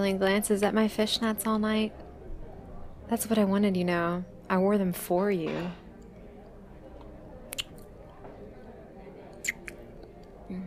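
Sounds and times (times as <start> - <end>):
speech: 0.0 - 2.0, 3.1 - 5.8
wet kissing smacks at the entrance of a restaurant: 7.5 - 7.9, 9.4 - 9.8.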